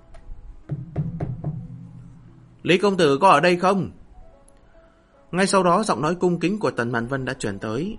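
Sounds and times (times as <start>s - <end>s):
light knocking on a door: 0.7s - 2.2s
speech: 2.6s - 4.0s, 5.3s - 7.9s.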